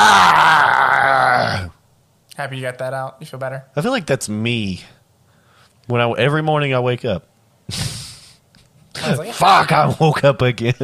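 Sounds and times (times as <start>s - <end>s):
person imitating a guttural growl rising into a harsh scream: 0.0s - 1.8s
speech: 2.4s - 5.0s, 5.9s - 8.0s, 9.0s - 10.8s.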